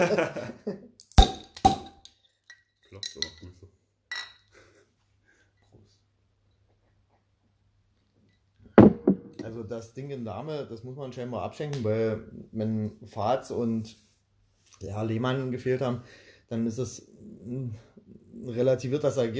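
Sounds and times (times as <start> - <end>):
laughter: 0.0 - 0.9
sharp knocks: 8.8 - 9.5
brief speech: 9.4 - 14.0, 14.7 - 19.3.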